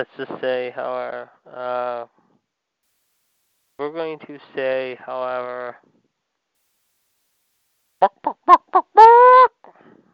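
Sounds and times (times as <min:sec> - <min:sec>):
speech: 0:00.0 - 0:02.2, 0:03.8 - 0:06.0, 0:08.0 - 0:10.0
chicken squawking: 0:08.0 - 0:09.6.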